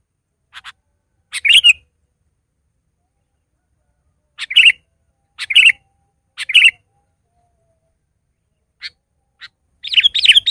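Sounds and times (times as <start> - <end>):
sooty-headed bulbul singing: 0.5 - 1.9, 4.4 - 7.6, 8.3 - 10.4.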